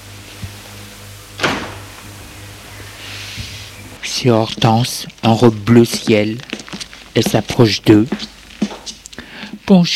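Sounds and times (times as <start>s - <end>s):
steady low electrical hum: 0.0s - 9.9s
living room door opening: 1.4s - 2.4s
speech: 4.1s - 6.5s, 7.2s - 8.3s, 9.7s - 9.9s.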